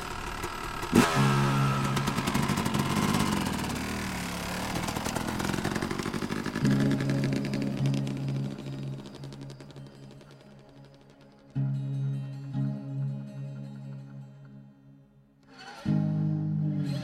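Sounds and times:
motorcycle engine starting and revving: 0.0 - 11.9, 15.4 - 17.0.

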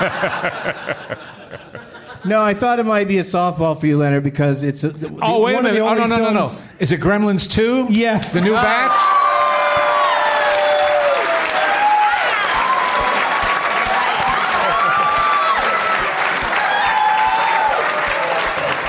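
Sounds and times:
laughter: 0.0 - 2.6, 8.1 - 9.1, 13.9 - 16.6, 18.1 - 18.8
speech: 0.0 - 9.2
live audience applause: 8.4 - 18.8
audience whoops and cheers: 8.6 - 18.8.

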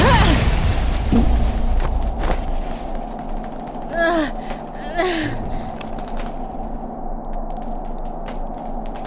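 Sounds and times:
loud explosion in a street: 0.0 - 2.2
low rumble: 0.3 - 9.0
person gasping or straining: 3.9 - 5.8.

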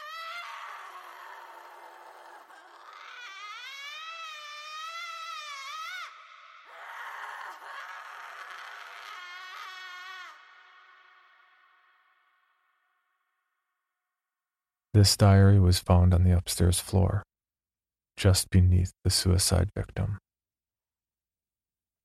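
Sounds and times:
woman screaming: 0.0 - 12.3
speech: 15.0 - 17.3, 18.2 - 20.2.

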